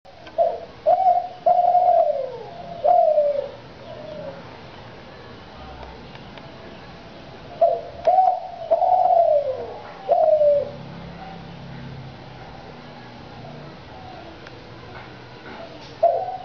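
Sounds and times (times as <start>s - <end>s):
turtle dove cooing in Bantul: 0.3s - 4.6s, 7.6s - 12.8s, 15.6s - 16.4s.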